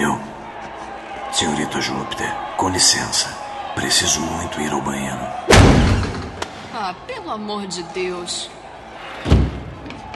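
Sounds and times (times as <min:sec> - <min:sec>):
speech: 0:01.4 - 0:06.2, 0:06.8 - 0:08.6
heavy door slamming shut: 0:05.5 - 0:06.4.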